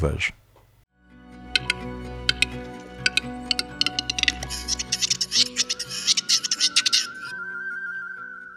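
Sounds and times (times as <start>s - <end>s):
speech: 0.0s - 0.4s
wild bird singing dry clicking and rattling notes outdoors: 1.6s - 7.3s.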